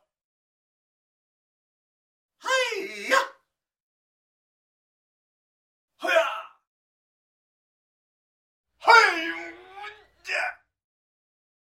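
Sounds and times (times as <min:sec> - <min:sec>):
man yelling: 0:02.4 - 0:03.4, 0:08.8 - 0:10.6
man grunting: 0:08.8 - 0:10.6.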